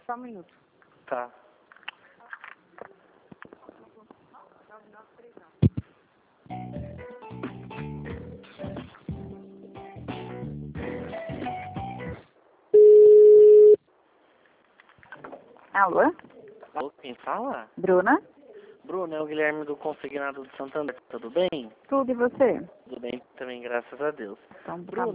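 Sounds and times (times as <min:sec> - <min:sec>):
speech: 0:00.1 - 0:01.4, 0:15.8 - 0:18.3, 0:18.9 - 0:25.1
telephone tone after a dropped call: 0:12.8 - 0:13.8.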